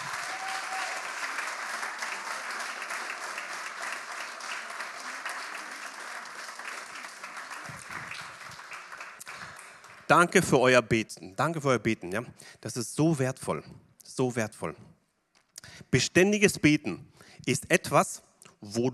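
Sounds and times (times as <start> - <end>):
congregation applauding: 0.0 - 10.4
speech: 10.1 - 14.9, 15.9 - 18.9.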